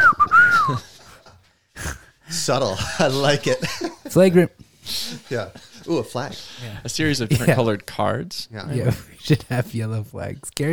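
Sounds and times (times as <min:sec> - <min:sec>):
person whistling imitating a referee's whistle: 0:00.0 - 0:00.8
speech: 0:00.7 - 0:00.9, 0:02.4 - 0:10.7
laughter: 0:02.4 - 0:04.1, 0:04.9 - 0:07.7.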